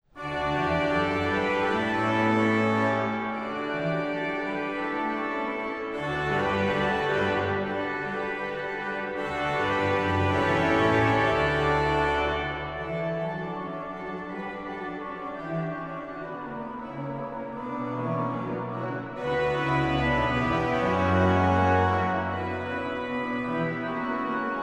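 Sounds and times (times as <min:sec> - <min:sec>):
organ solo of a psalm: 0:00.2 - 0:24.6.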